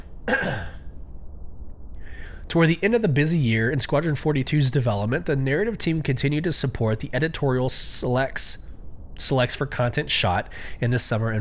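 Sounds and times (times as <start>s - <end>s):
raspy throat clearing: 0.3s - 0.9s
speech: 2.5s - 8.6s, 9.2s - 11.3s.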